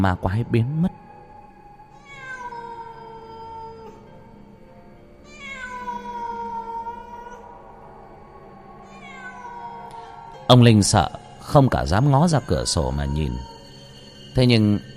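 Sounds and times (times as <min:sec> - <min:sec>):
speech: 0:00.0 - 0:01.0, 0:10.5 - 0:13.6, 0:14.4 - 0:14.9
cat meowing in long wavering calls: 0:02.0 - 0:04.1, 0:05.2 - 0:07.6, 0:08.8 - 0:10.4, 0:11.1 - 0:13.7.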